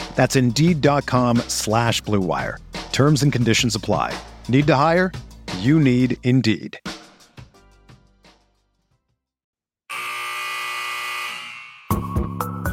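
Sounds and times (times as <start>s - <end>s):
punchy music: 0.0s - 8.6s, 11.9s - 12.7s
speech: 0.2s - 6.9s
loud harsh arena buzzer blaring: 9.9s - 12.1s.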